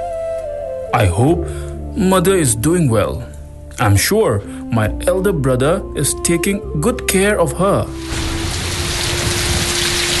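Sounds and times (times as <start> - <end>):
speech: 1.0 - 8.4
heavy rain around a house in a valley during the rainy season: 8.0 - 10.1.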